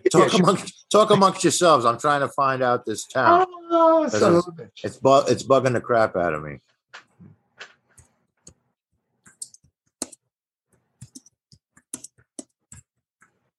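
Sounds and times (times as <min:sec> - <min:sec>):
speech: 0:00.1 - 0:07.0
keyboard typing: 0:09.2 - 0:13.5.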